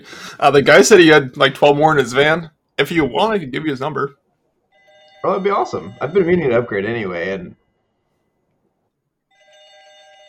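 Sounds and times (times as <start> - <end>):
speech: 0.0 - 4.2, 5.2 - 7.6
phone ringing with a bright electronic trill: 2.8 - 4.1, 4.7 - 8.5, 9.3 - 10.2.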